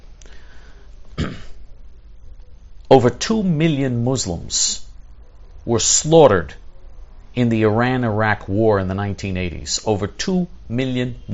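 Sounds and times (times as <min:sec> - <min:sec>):
throat clearing from person recovering from acute bronchitis: 0:01.1 - 0:01.6
speech: 0:02.9 - 0:04.8, 0:05.6 - 0:06.6, 0:07.4 - 0:11.3.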